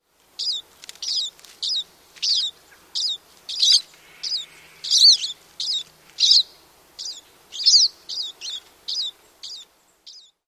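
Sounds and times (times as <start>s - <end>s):
pine siskin calls: 0.4s - 10.4s.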